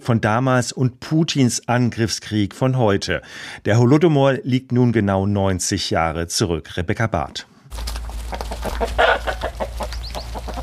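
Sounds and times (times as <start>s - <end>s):
speech: 0.0s - 9.4s
chickens clucking in a snowy farmyard in a Ukrainian village: 7.8s - 10.6s.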